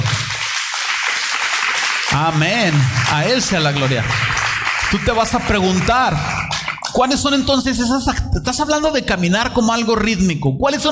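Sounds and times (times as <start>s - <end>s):
audience applauding: 0.0s - 7.4s
speech: 2.2s - 10.8s.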